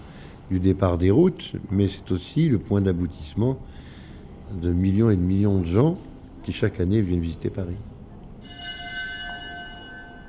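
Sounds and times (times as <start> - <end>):
speech: 0.5 - 3.8, 4.5 - 8.6
church bells ringing: 8.4 - 10.2.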